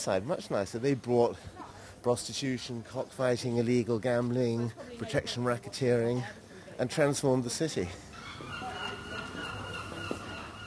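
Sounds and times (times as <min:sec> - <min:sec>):
speech: 0:00.0 - 0:08.1
seagulls calling in Brighton: 0:08.1 - 0:10.6.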